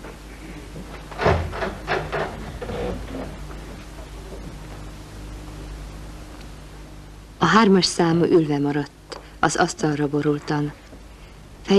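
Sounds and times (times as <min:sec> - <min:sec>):
steady quiet hiss: 0:00.0 - 0:11.7
clattering knocks and rustles of jurors filing out: 0:00.7 - 0:04.9
jury room door opened by a court usher: 0:01.1 - 0:03.4
speech: 0:07.5 - 0:10.8.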